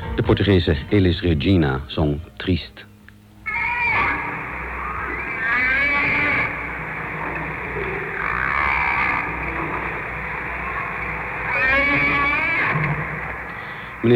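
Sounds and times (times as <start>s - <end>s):
speech: 0.3s - 2.9s
fin whale vocalizations: 3.4s - 14.1s
steady underwater-like rumble: 4.4s - 14.1s.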